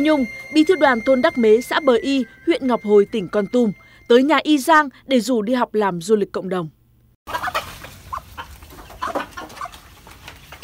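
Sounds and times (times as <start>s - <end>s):
speech: 0.0s - 7.4s
chickens clucking while being fed: 7.3s - 10.6s.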